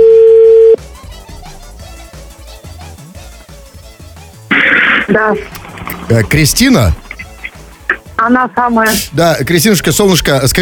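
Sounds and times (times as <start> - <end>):
loud steady telephone tone: 0.0 - 0.8
abrupt burst of harsh static: 4.5 - 8.1
speech: 5.1 - 7.0, 8.2 - 10.6.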